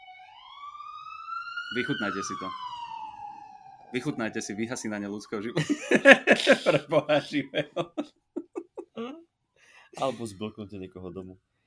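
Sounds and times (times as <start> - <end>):
ambulance siren wailing: 0.0 - 8.0
speech: 1.7 - 2.7, 3.9 - 8.2, 10.0 - 11.5
laughter: 5.5 - 9.2.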